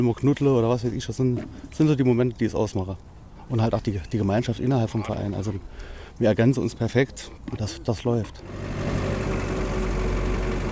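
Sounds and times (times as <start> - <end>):
speech: 0.0 - 9.0
red tractor engine chugging on forest track in wildlife park pulling hay trailer: 8.4 - 10.6.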